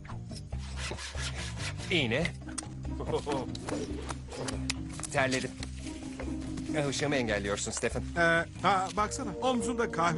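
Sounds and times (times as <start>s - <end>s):
hand saw rasping back and forth: 0.6s - 2.1s
speech: 1.9s - 2.4s, 3.0s - 5.7s, 6.7s - 10.1s.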